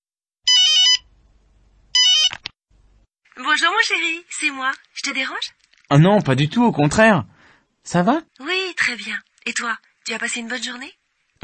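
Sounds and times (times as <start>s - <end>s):
telephone ringing with bright electronic trilling: 0.5s - 1.1s, 2.0s - 2.4s
speech: 3.6s - 11.4s.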